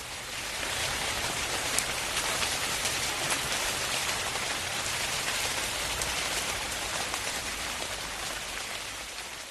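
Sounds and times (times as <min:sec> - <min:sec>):
heavy rain pouring: 0:00.0 - 0:09.4.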